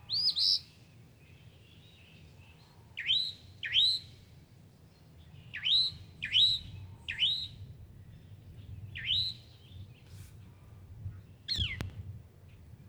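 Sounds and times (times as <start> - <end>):
northern mockingbird song: 0.0 - 4.2, 5.0 - 10.1, 11.1 - 12.7.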